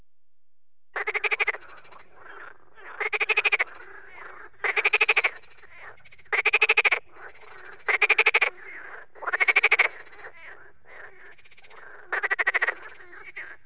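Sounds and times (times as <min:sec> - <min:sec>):
Rana ridibunda: 0:01.0 - 0:13.6.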